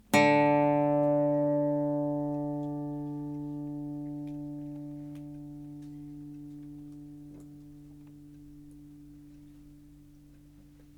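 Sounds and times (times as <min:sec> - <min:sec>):
electro-acoustic guitar playing the note D: 0:00.0 - 0:09.4.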